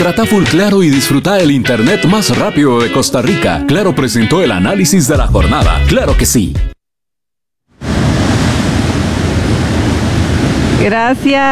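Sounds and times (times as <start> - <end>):
speech: 0.0 - 6.8, 10.8 - 11.4
Caribbean Sea waves at the seafront: 7.8 - 11.1
breeze at the Caribbean seafront: 7.8 - 11.3.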